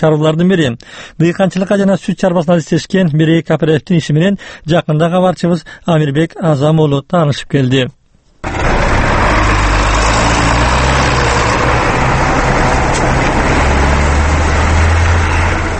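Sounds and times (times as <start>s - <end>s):
speech: 0.0s - 8.6s
John Deere wheeled tractor engine ploughing a stubble field at the edge of a village: 8.4s - 15.7s.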